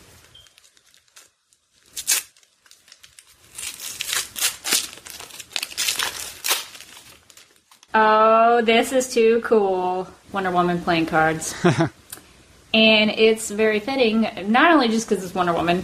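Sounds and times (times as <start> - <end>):
paper tearing and crinkling as a small gift package is unwrapped: 0.0 - 7.9
speech: 7.9 - 12.0, 12.7 - 15.8.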